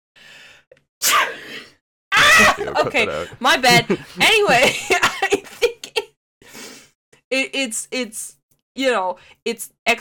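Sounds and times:
breathy inhale: 0.2s - 0.7s, 6.4s - 7.0s, 9.2s - 9.4s
person sneezing: 1.0s - 1.4s
laughter: 2.2s - 6.0s
speech: 2.6s - 5.4s, 7.3s - 9.9s.

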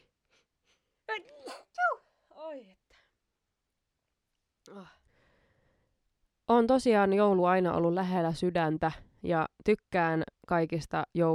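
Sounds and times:
speech: 1.2s - 1.9s, 2.5s - 2.9s, 4.7s - 5.0s, 6.5s - 11.3s
person attempting a sneeze: 1.2s - 2.0s.

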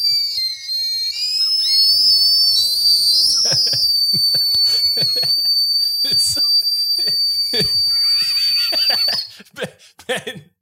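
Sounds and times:
shrill whistle from a whistling candy: 0.0s - 9.5s
laughter: 3.4s - 5.5s, 6.1s - 10.5s
breathy puffs: 9.3s - 10.5s.

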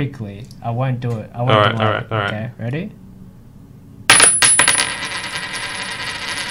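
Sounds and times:
speech: 0.0s - 3.0s
coin dropped onto a hard surface: 4.1s - 6.4s.

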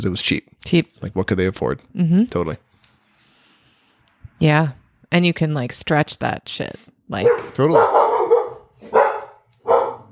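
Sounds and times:
speech: 0.0s - 2.7s, 4.4s - 8.0s
dogs barking: 7.2s - 10.1s.

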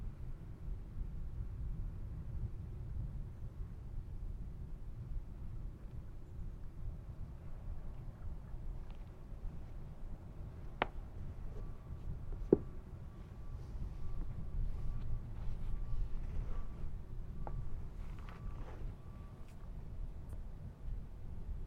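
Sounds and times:
constant low rumble of traffic at the edge of town: 0.0s - 21.6s
faint intermittent beeping: 7.4s - 21.6s.

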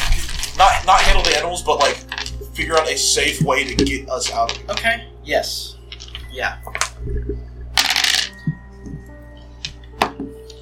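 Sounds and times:
dice rolling and rattling during a tabletop role-playing game: 0.0s - 2.9s, 5.9s - 7.0s, 7.8s - 8.6s
speech: 2.6s - 5.8s, 6.4s - 7.5s.

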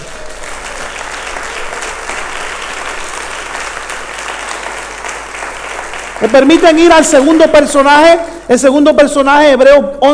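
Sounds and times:
large audience applauding during a sermon: 0.0s - 7.9s
speech: 6.2s - 10.1s.

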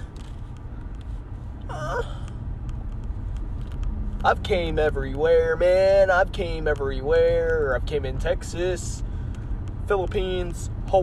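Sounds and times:
steady low rumble of noise: 0.0s - 11.0s
person yawning: 1.7s - 2.3s
speech: 4.2s - 9.1s, 9.9s - 11.0s.

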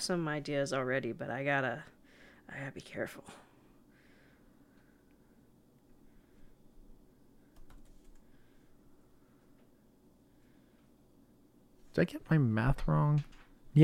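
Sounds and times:
speech: 0.0s - 3.5s, 12.0s - 13.8s
low steady hum: 0.0s - 13.8s
typing on a computer keyboard: 7.5s - 8.3s.

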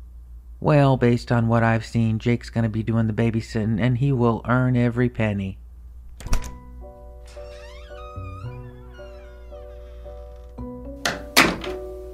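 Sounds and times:
speech: 0.6s - 5.6s
door thudding shut: 6.2s - 6.7s, 7.3s - 11.9s
rattly knock: 11.0s - 11.8s.

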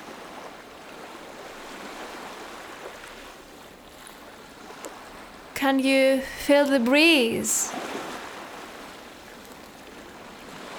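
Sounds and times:
ocean waves washing and hissing: 0.0s - 4.0s, 5.6s - 10.7s
speech: 5.6s - 8.0s.

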